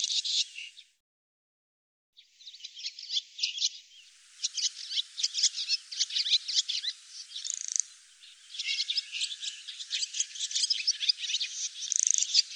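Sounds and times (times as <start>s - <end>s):
barn swallow twittering: 2.4s - 12.5s.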